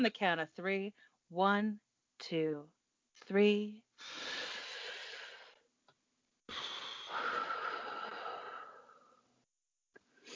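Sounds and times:
speech: 0:00.0 - 0:04.4
deep drawn-out breathing: 0:04.0 - 0:05.6, 0:06.5 - 0:09.3.

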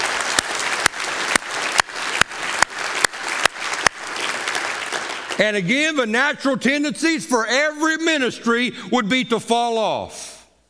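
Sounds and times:
congregation applauding: 0:00.0 - 0:06.3
speech: 0:05.4 - 0:10.3.

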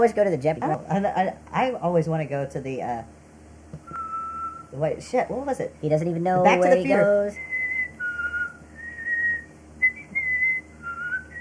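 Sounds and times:
speech: 0:00.0 - 0:03.2, 0:04.7 - 0:07.5
person whistling a tune: 0:03.9 - 0:04.7, 0:07.1 - 0:11.4.

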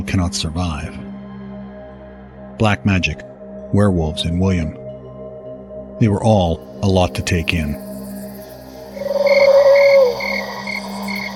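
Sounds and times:
speech: 0:00.1 - 0:01.0, 0:02.6 - 0:04.8, 0:06.0 - 0:07.9
frogs croaking at night in a rapid pulsing trill: 0:06.6 - 0:11.3.

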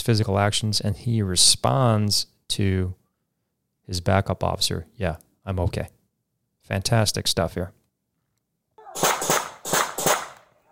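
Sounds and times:
speech: 0:00.0 - 0:03.0, 0:03.9 - 0:06.0, 0:06.7 - 0:07.8
gunshots fired by police team leader on the ground: 0:08.8 - 0:10.5.

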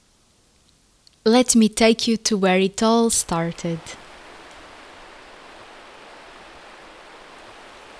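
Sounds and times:
speech: 0:01.2 - 0:04.0
stream spilling over a small waterfall: 0:04.0 - 0:07.9.

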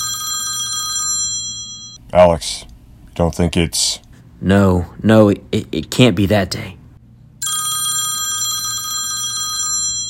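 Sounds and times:
telephone bell ringing in a metallic trill: 0:00.0 - 0:02.0, 0:07.4 - 0:10.0
low hum: 0:00.0 - 0:10.0
speech: 0:02.1 - 0:06.8.

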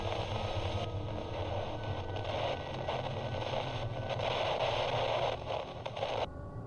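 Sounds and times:
car radio static: 0:00.0 - 0:06.3.

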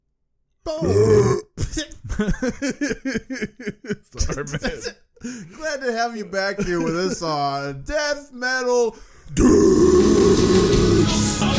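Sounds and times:
long loud guttural raspy burp: 0:00.8 - 0:01.6, 0:09.4 - 0:11.3
laughter: 0:01.6 - 0:07.6
speech: 0:02.2 - 0:03.7, 0:04.4 - 0:05.0, 0:06.0 - 0:11.4.

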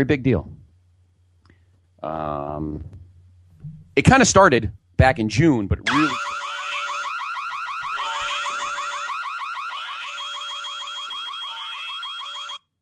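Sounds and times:
speech: 0:00.0 - 0:00.5, 0:02.0 - 0:03.0, 0:04.0 - 0:06.4
entrance song: 0:05.9 - 0:12.6
fire alarm electronic warble inside a song: 0:05.9 - 0:12.8.

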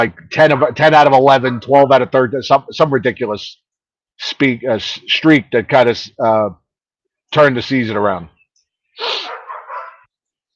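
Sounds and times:
speech: 0:00.0 - 0:06.6, 0:07.3 - 0:08.3, 0:09.0 - 0:09.3
dog barking: 0:09.1 - 0:10.1.

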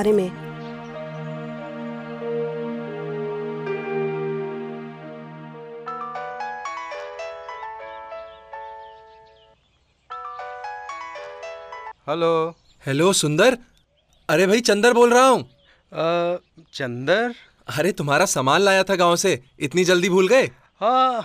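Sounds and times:
speech: 0:00.0 - 0:00.4, 0:12.1 - 0:13.7, 0:14.3 - 0:21.2
melodic phone ringtone with bright chiming notes: 0:01.9 - 0:09.4, 0:10.1 - 0:12.0.

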